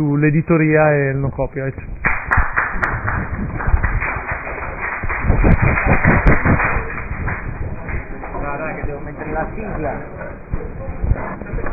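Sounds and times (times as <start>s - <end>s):
speech: 0.0s - 2.4s, 5.9s - 6.7s, 8.9s - 10.4s
steady murmur of crowd noise: 3.2s - 11.7s.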